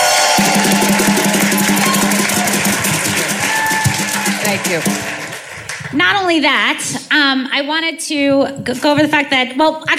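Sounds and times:
people cheering: 0.0 - 5.8
large audience applauding: 0.0 - 6.0
speech: 4.6 - 5.1, 5.9 - 9.9.

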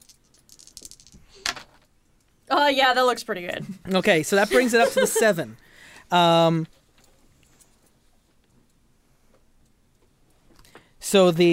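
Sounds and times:
dice rolled during a game landing on a hard surface: 0.0 - 1.9
speech: 2.6 - 6.8, 11.1 - 11.5
laughter: 4.1 - 5.6.

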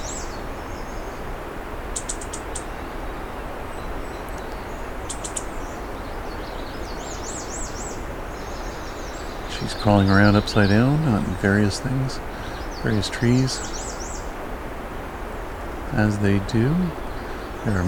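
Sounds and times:
steady rushing noise: 0.0 - 17.8
female black-and-white warbler giving faint wavering twitters: 2.0 - 3.1, 3.8 - 14.3, 15.9 - 17.8
speech: 9.6 - 13.8, 16.0 - 17.0, 17.6 - 17.8.

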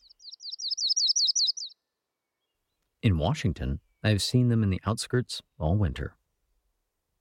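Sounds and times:
yellow-rumped warbler sharp high chirps: 0.0 - 2.8
speech: 3.0 - 6.2.

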